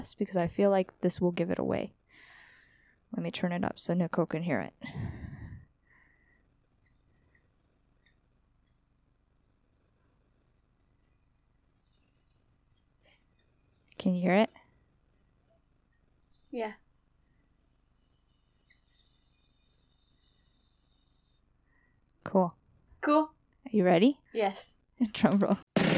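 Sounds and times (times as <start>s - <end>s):
speech: 0.0s - 2.0s, 3.1s - 5.2s, 14.0s - 14.5s, 16.5s - 16.8s, 22.3s - 25.6s
high thin insect buzz: 6.5s - 21.5s
hummingbird chirping outdoors: 6.5s - 21.5s.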